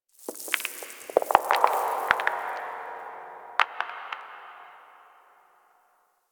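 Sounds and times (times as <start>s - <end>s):
small moon dust fall ambience: 0.1s - 3.8s.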